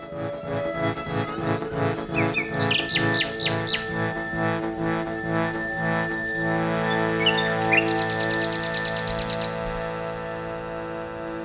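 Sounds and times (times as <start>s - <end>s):
birds chirping: 0.0s - 11.4s
sustained tonal background: 0.0s - 11.4s
rapid high bird trill: 1.5s - 10.6s.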